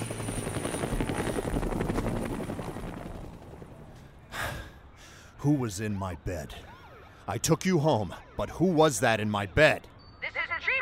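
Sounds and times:
helicopter hovering with rotor chopping: 0:00.0 - 0:04.3
speech: 0:05.4 - 0:06.7, 0:07.3 - 0:09.9.

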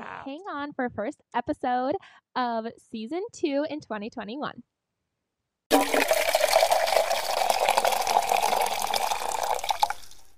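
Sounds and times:
speech: 0:00.2 - 0:04.8
coffee pouring into a cup: 0:05.7 - 0:10.3.

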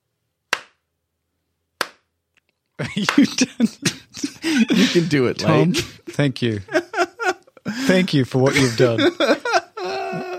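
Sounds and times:
slow hand claps: 0:00.5 - 0:00.8, 0:01.8 - 0:02.1, 0:02.9 - 0:03.4
speech: 0:02.8 - 0:06.8, 0:07.8 - 0:09.4
laughter: 0:02.8 - 0:10.3.

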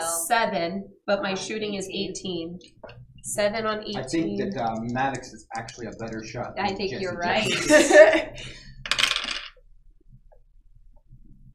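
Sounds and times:
speech: 0:00.3 - 0:09.0
laughter: 0:07.1 - 0:08.7
dice rattling on a hard tabletop: 0:08.8 - 0:09.6.

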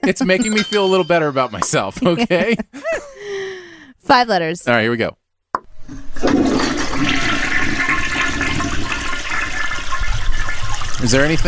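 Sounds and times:
speech: 0:00.0 - 0:03.1, 0:04.0 - 0:05.2, 0:11.0 - 0:11.4
laughter: 0:01.2 - 0:03.2
toilet flushing: 0:05.8 - 0:11.4.

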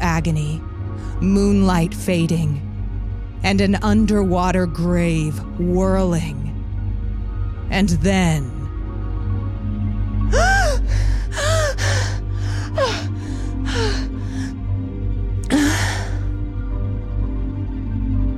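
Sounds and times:
low rumbling background: 0:00.0 - 0:18.3
speech: 0:00.2 - 0:02.7, 0:03.4 - 0:06.4, 0:07.7 - 0:08.6
woman gasping for breath: 0:10.3 - 0:14.5, 0:15.5 - 0:16.3.

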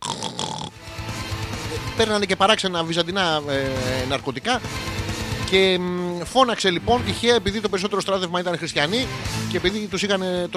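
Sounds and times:
voice imitating snoring with raspy guttural snorts: 0:00.0 - 0:00.8
speech: 0:02.0 - 0:04.9, 0:05.5 - 0:10.5
brief higher-pitched tonal sound: 0:06.6 - 0:08.0.

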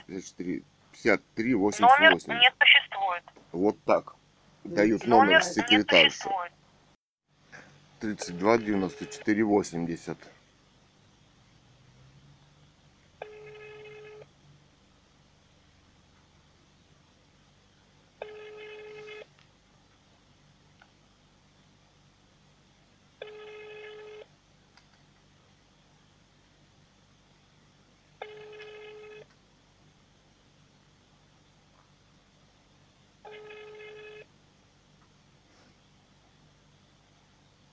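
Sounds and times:
speech: 0:00.1 - 0:06.6, 0:08.0 - 0:10.4
telephone ringback tone ringing unanswered: 0:13.2 - 0:14.3, 0:18.2 - 0:19.3, 0:23.2 - 0:24.3, 0:28.2 - 0:29.3, 0:33.3 - 0:34.3.

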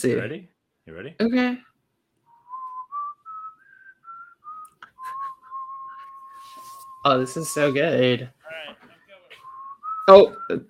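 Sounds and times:
speech: 0:00.0 - 0:01.7, 0:07.0 - 0:08.8, 0:10.1 - 0:10.6
noise: 0:00.0 - 0:10.6
person whistling a short melody: 0:02.3 - 0:07.8, 0:09.3 - 0:10.6.

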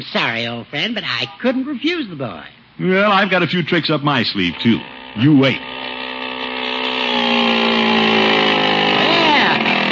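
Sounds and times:
speech: 0:00.0 - 0:06.0
small motor running on a bicycle: 0:03.8 - 0:09.9.

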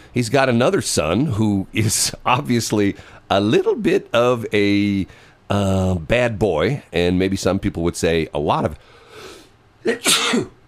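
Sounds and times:
speech: 0:00.1 - 0:09.0, 0:09.8 - 0:10.6
sneeze into an arm caused by allergies: 0:09.9 - 0:10.6.

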